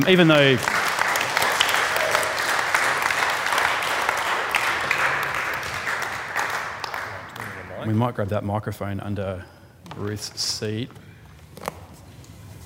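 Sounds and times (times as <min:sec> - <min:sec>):
speech: 0:00.0 - 0:00.8, 0:07.9 - 0:11.0
large crowd applauding: 0:00.0 - 0:07.8.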